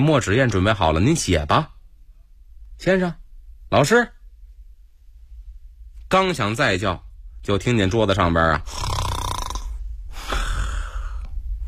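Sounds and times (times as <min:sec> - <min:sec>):
speech: 0:00.0 - 0:01.7, 0:02.8 - 0:04.2, 0:06.1 - 0:08.9
voice imitating the snoring of a sleeping elderly man: 0:08.7 - 0:11.1.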